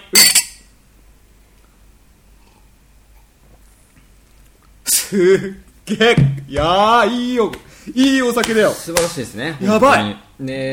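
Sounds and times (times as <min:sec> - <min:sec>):
sake drinking glasses clinking in a toast: 0:00.0 - 0:00.7
speech: 0:05.1 - 0:10.7.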